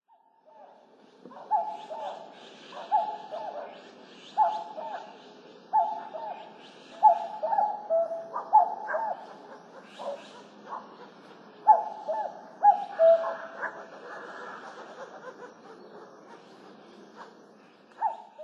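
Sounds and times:
common cuckoo calling in Utsunomiya: 1.3 - 18.4.

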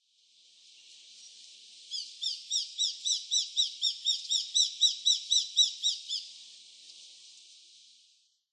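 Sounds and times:
Japanese sparrowhawk in Utsunomiya: 2.0 - 6.3.

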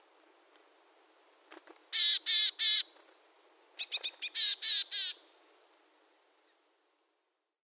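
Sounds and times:
willow tit buzzy nasal calls: 1.9 - 2.9, 3.8 - 5.5.

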